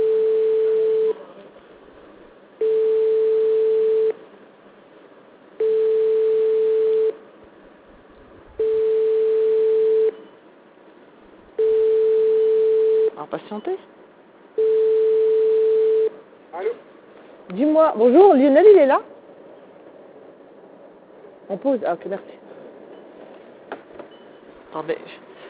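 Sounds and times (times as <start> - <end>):
telephone line tone beeps while calling someone: 0.0 - 1.2, 2.6 - 4.2, 5.6 - 7.2, 8.6 - 10.3, 11.6 - 13.1, 14.6 - 16.2
speech: 17.9 - 19.1, 21.6 - 22.4, 24.7 - 25.2.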